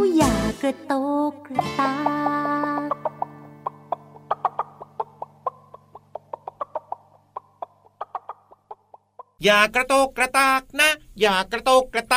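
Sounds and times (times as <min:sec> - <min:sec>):
speech: 0:00.2 - 0:02.4, 0:09.4 - 0:12.1
hen clucking: 0:02.0 - 0:09.4.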